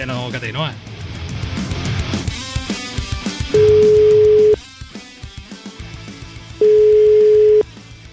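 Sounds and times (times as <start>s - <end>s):
telephone ringback tone before a call connects: 3.6s - 4.6s, 6.6s - 7.6s.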